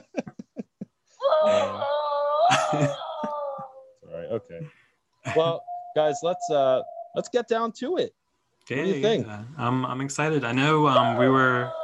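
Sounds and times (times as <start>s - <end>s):
person moaning scream: 1.2s - 3.9s, 11.0s - 11.8s
speech: 2.7s - 3.0s, 4.3s - 11.8s.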